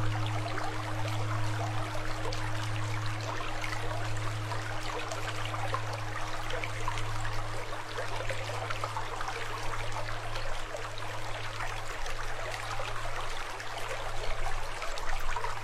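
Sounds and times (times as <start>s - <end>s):
steady low tone: 0.0s - 10.5s
flowing water rushing: 0.0s - 15.6s.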